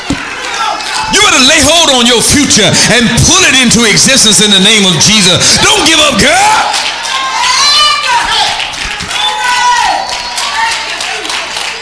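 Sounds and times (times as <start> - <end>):
audience clapping: 0.0 - 2.3, 4.6 - 11.8
speech: 1.2 - 8.6.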